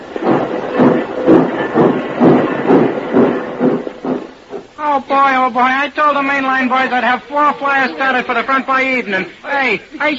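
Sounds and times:
small steam locomotive chugging in a rail yard: 0.0s - 4.8s
speech: 5.0s - 10.1s.

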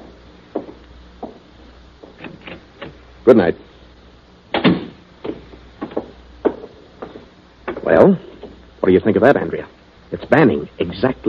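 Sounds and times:
lighter door clunks and clicks: 2.2s - 3.0s
speech: 3.2s - 3.7s, 8.9s - 11.2s
door shutting with a solid thump: 4.5s - 8.6s.

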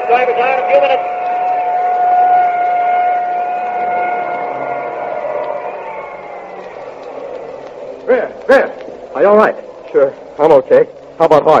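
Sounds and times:
steady high ambulance siren driving away after a race car crash: 0.0s - 8.4s
broad wash of noise: 0.0s - 11.5s
speech: 0.1s - 1.2s, 8.1s - 11.5s.

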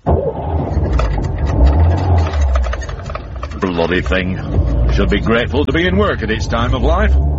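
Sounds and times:
old car engine grunting and rumbling: 0.0s - 7.3s
old car engine loose clattering: 0.4s - 6.9s
speech: 3.7s - 7.3s.

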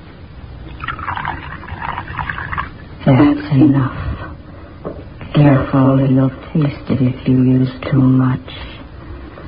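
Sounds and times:
liquid poured from a bottle into a cup of cocoa: 0.7s - 2.8s
speech: 3.1s - 4.2s, 5.4s - 8.7s.

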